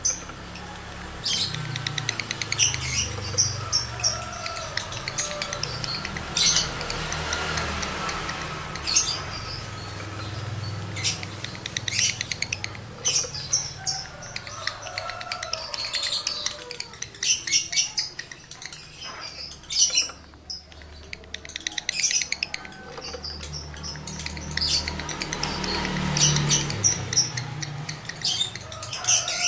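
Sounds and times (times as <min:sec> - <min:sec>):
male lovebird in breeding condition scratchy chirps and clicks: 0:00.0 - 0:29.4.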